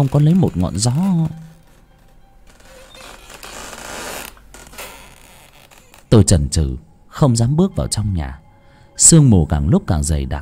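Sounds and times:
speech: 0:00.0 - 0:01.5, 0:06.1 - 0:08.4, 0:09.0 - 0:10.4
wooden door creaking as it swings shut by itself: 0:00.0 - 0:06.6.

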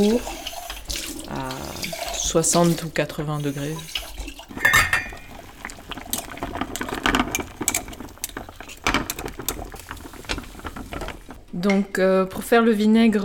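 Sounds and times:
speech: 0:00.0 - 0:00.4, 0:02.3 - 0:04.0, 0:11.6 - 0:13.2
water boiling to sterilize a glass jar: 0:00.0 - 0:12.2
glass jar clinking: 0:04.6 - 0:05.3.

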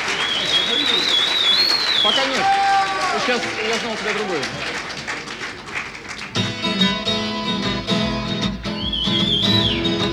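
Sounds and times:
person whistling a melodic phrase: 0:00.2 - 0:02.4, 0:08.6 - 0:10.1
speech: 0:02.1 - 0:02.6, 0:03.2 - 0:04.7
live rock band music at a rock concert in Moscow: 0:06.4 - 0:10.1.

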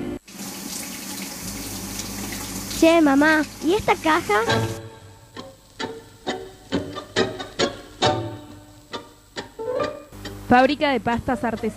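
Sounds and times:
running tap water pouring into a kitchen sink while washing dishes: 0:00.2 - 0:07.8
speech: 0:02.8 - 0:04.8, 0:10.5 - 0:11.7.

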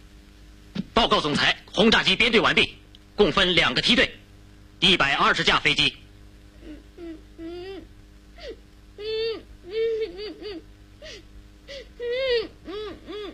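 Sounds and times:
speech: 0:01.0 - 0:04.2, 0:04.8 - 0:06.0
person crying in whimpering sobs: 0:06.6 - 0:13.3.

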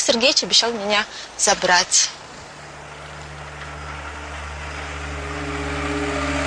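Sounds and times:
speech: 0:00.1 - 0:02.3
car engine humming and rumbling as the car drives up: 0:02.4 - 0:06.4.

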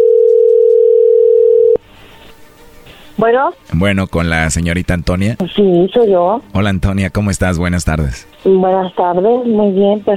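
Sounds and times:
telephone line tone while a call is dialled: 0:00.0 - 0:01.8
speech: 0:03.2 - 0:10.1.

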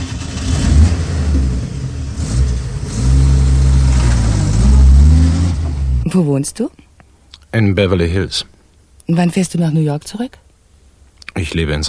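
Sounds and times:
car engine revving as the car drives off: 0:00.0 - 0:06.1
speech: 0:06.2 - 0:06.8, 0:07.5 - 0:08.5, 0:09.1 - 0:10.4, 0:11.4 - 0:11.8.

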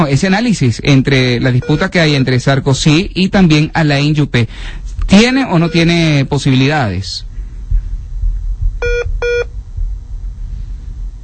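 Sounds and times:
speech: 0:00.0 - 0:07.3
low rumbling background: 0:00.0 - 0:11.2
telephone dialing tones while reconnecting a live call: 0:01.6 - 0:02.3.

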